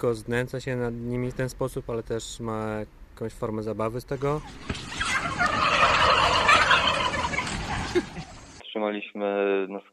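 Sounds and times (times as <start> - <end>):
speech: 0.0 - 5.7, 8.8 - 9.9
chorus of turkeys gobbling on a crowded turkey farm: 4.4 - 8.6.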